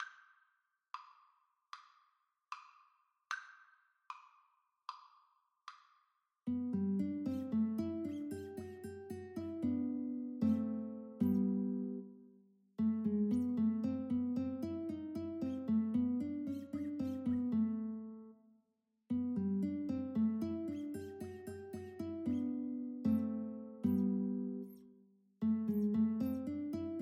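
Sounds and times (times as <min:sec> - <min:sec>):
guitar duet: 0:06.5 - 0:12.2, 0:12.8 - 0:18.3, 0:19.1 - 0:27.0.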